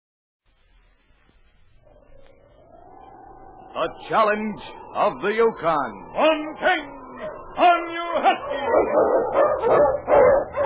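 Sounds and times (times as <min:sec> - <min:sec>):
speech: 0:03.8 - 0:07.0, 0:07.6 - 0:10.0
Eskimo sled lead dog barking: 0:07.2 - 0:10.6
Eskimo sled lead dog whining: 0:08.2 - 0:10.6.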